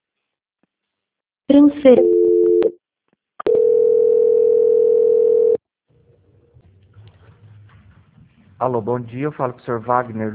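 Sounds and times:
speech: 1.5s - 2.2s, 8.6s - 10.3s
stepped electronic telephone tone as a call is transferred: 3.4s - 5.6s.

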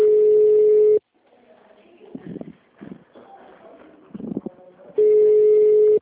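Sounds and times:
ringback tone of a phone call placed to a shop: 0.0s - 1.0s, 5.0s - 6.0s.

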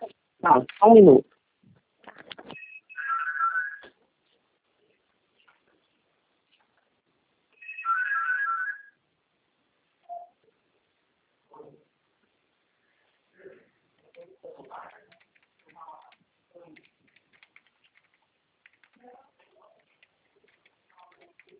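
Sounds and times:
speech: 0.5s - 1.3s
mobile phone ringtone for an incoming call: 2.6s - 3.9s, 7.6s - 9.0s.

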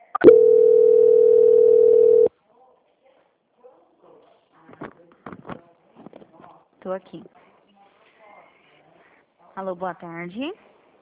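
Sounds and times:
steady telephone tone of a bank customer's call being transferred: 0.0s - 2.3s
speech: 6.9s - 7.4s, 9.6s - 10.7s.

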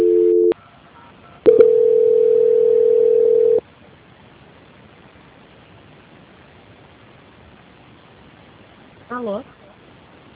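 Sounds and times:
telephone tones while calling a mobile phone: 0.0s - 0.6s, 1.4s - 3.6s
phone line clicks: 1.5s - 3.6s.

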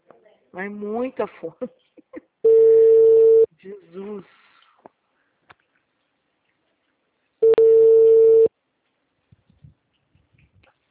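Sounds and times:
speech: 0.5s - 2.2s, 3.6s - 4.5s
telephone line tone when dialing an automatic dialer: 2.5s - 3.5s, 7.4s - 8.5s.

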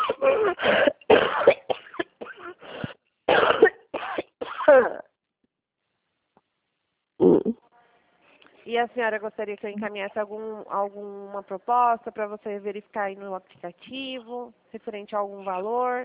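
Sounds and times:
person coughing strongly and harshly: 0.0s - 5.1s
speech: 8.8s - 16.0s.

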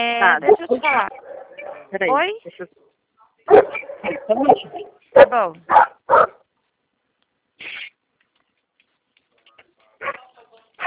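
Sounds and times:
speech: 0.0s - 1.3s, 1.9s - 2.8s, 3.4s - 6.4s
several dogs barking: 0.3s - 2.2s, 2.8s - 6.4s, 10.0s - 10.8s.

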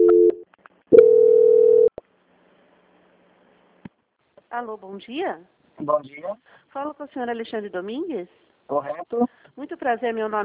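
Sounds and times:
steady telephone tone during call transfer: 0.0s - 1.9s
speech: 4.6s - 10.4s.

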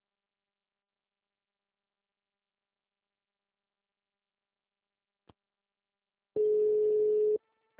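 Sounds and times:
voicemail beep tone on a phone line: 6.4s - 7.4s.

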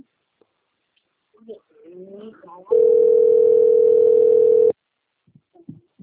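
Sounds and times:
people talking: 1.4s - 3.0s, 5.6s - 6.0s
telephone ringing tone during a call: 2.7s - 4.8s.

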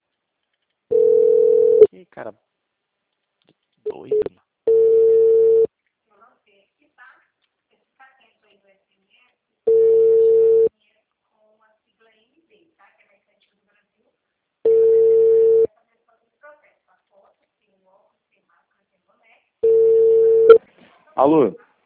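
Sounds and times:
telephone busy tone after a dropped phone call: 0.9s - 1.9s, 4.1s - 5.7s, 9.7s - 10.7s, 14.7s - 15.7s, 19.6s - 20.6s
speech: 2.0s - 2.5s, 21.2s - 21.6s.

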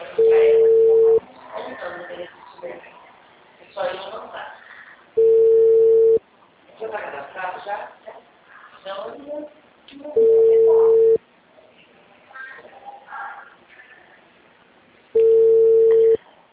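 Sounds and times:
telephone ringback tone while calling a customer: 0.2s - 1.2s, 5.2s - 6.2s, 10.2s - 11.2s, 15.2s - 16.2s.

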